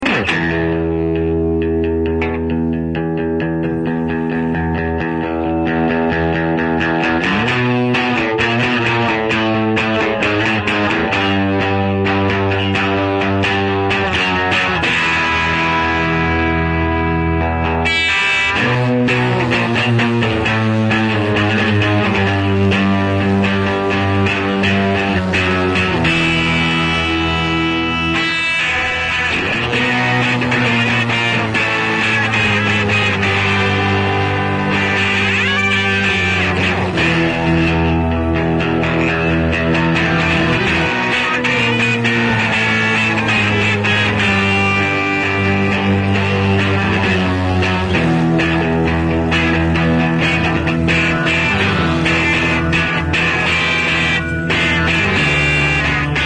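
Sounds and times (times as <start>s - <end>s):
isolated guitar: 0.0s - 56.2s.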